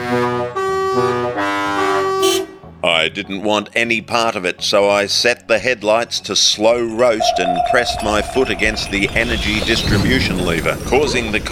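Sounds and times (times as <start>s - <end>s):
loud brassy vehicle horns blaring in traffic: 0.0s - 2.7s
speech: 3.0s - 11.5s.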